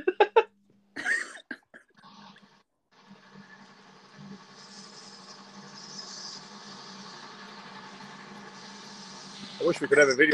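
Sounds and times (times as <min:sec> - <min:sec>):
sharp bursts of steam train: 0:04.4 - 0:10.2
speech: 0:09.7 - 0:10.3.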